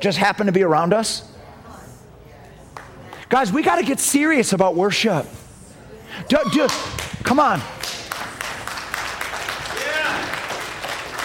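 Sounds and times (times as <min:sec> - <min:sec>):
speech: 0:00.0 - 0:01.3, 0:03.3 - 0:05.4, 0:06.1 - 0:07.9
rising whistle or shout: 0:06.3 - 0:07.0
crowd clapping: 0:06.6 - 0:11.2.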